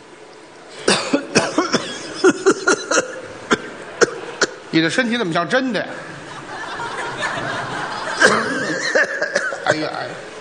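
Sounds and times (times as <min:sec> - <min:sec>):
person coughing theatrically, imitating a sick person: 0:00.8 - 0:04.6, 0:08.2 - 0:09.9
speech: 0:04.7 - 0:06.1, 0:09.7 - 0:10.3
laughter: 0:05.9 - 0:10.1.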